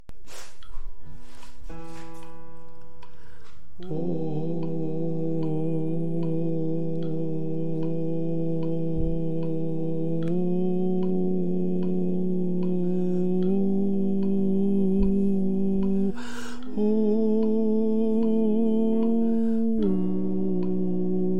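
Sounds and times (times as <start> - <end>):
alto voice singing chorale: 3.8 - 21.3.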